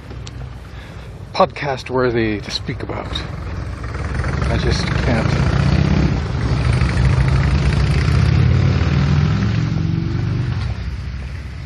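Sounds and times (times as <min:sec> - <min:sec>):
speech: 0:01.4 - 0:03.4, 0:04.5 - 0:05.6
two motorcycles roaring as they take off: 0:03.2 - 0:11.1.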